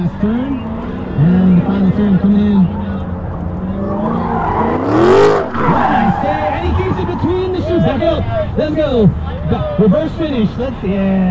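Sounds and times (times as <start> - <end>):
sports cars racing on an autocross track: 0.0 - 11.2
car roaring loudly past: 0.7 - 9.1.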